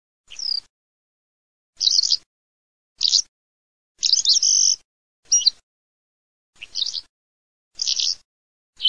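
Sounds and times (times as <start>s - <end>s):
calandra lark singing: 0.3s - 0.7s, 1.8s - 2.3s, 3.0s - 3.3s, 4.0s - 5.6s, 6.6s - 7.1s, 7.7s - 8.8s.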